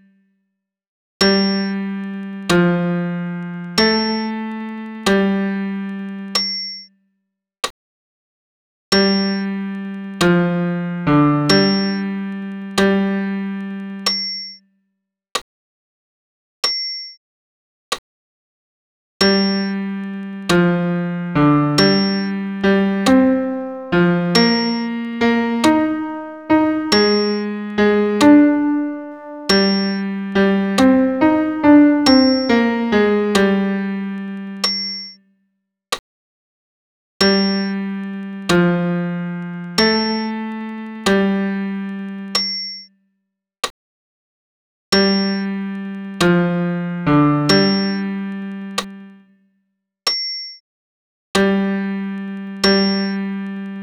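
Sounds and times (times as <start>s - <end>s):
solo piano: 1.2s - 5.9s, 9.0s - 13.8s, 19.2s - 34.6s, 37.2s - 42.3s, 45.0s - 48.6s, 51.4s - 53.5s.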